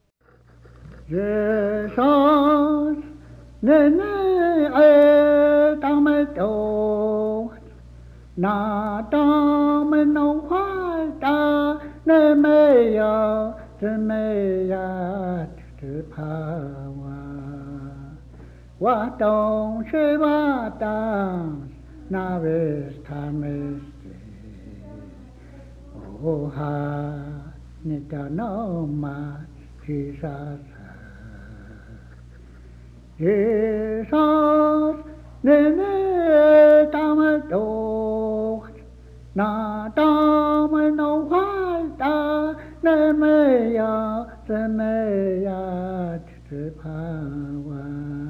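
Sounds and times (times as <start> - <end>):
hymnbook songs in Cheyenne: 0.2 - 48.2.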